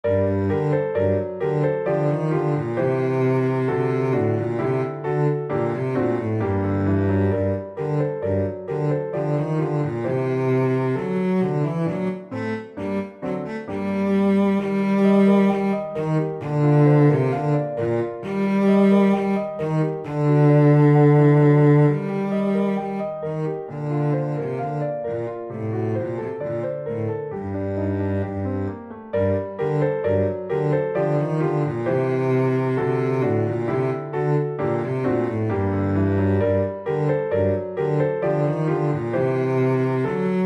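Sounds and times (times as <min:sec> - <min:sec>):
cello playing in G minor: 0:00.0 - 0:40.4
piano playing in G minor: 0:00.0 - 0:40.4.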